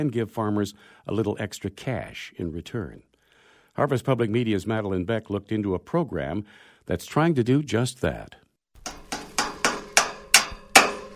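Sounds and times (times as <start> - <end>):
speech: 0.0 - 3.1, 3.8 - 8.4
hammer blows while assembling an antenna tower for tracking birds: 8.8 - 11.1.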